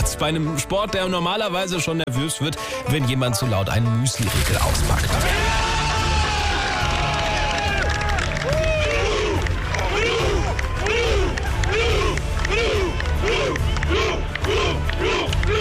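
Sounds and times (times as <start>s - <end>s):
speech: 0.2s - 5.6s
crowd noise: 4.8s - 15.5s
crowd of fans chanting in unison doing a rowing cheer on a golf course: 9.0s - 15.5s.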